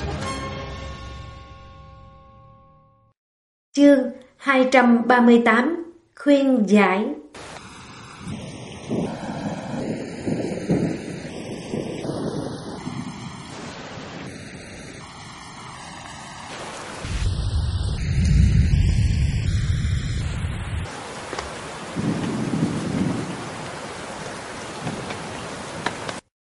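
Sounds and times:
melody of bright bell-like notes: 0.3 - 3.1
speech: 3.8 - 7.2
thunderstorm wind: 7.3 - 26.3
deep rumble of thunder: 7.4 - 25.9
steady hissing rain: 7.4 - 26.3.

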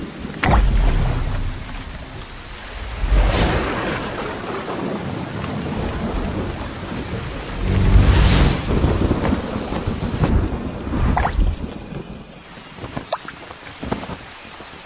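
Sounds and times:
heaving surf in a violent tropical storm: 0.0 - 11.1
gusting wind of a violent tropical storm: 0.0 - 14.8.

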